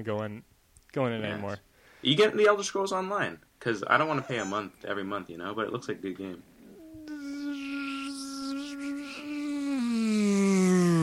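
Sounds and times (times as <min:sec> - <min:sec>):
speech: 0:00.0 - 0:06.5
bees buzzing: 0:07.0 - 0:11.0.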